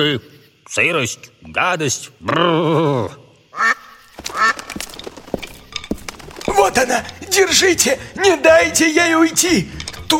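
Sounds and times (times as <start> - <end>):
speech: 0.0 - 4.5, 6.7 - 10.1
duck quacking: 3.6 - 4.6.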